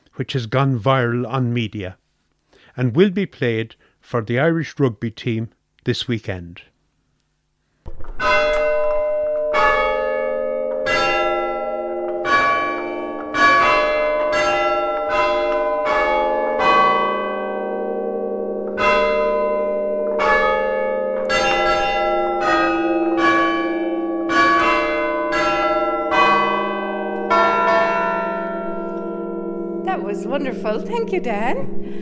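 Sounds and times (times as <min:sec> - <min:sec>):
speech: 0:00.2 - 0:02.0, 0:02.8 - 0:06.7, 0:30.6 - 0:32.0
cathedral church bells chiming a tune: 0:08.2 - 0:32.0.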